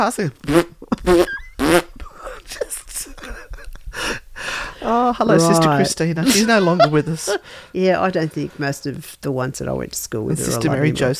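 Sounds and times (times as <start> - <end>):
speech: 0.0 - 1.8, 5.1 - 11.1
voice imitating a fart with buzzy wavering blasts: 0.4 - 2.1
laughter: 0.8 - 7.6
breathy noises: 3.8 - 5.1, 7.4 - 8.7.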